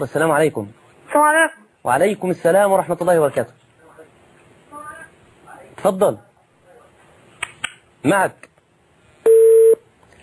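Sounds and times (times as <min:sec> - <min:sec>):
speech: 0:00.0 - 0:03.6, 0:05.8 - 0:06.3, 0:08.0 - 0:08.5
telephone tone after a phone call is cut off: 0:09.3 - 0:09.8.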